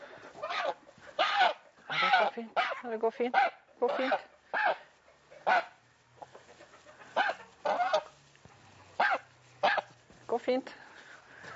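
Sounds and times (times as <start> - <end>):
goose honking: 0.4 - 8.2, 8.8 - 9.9
speech: 2.4 - 4.3, 5.5 - 5.7, 10.5 - 10.8.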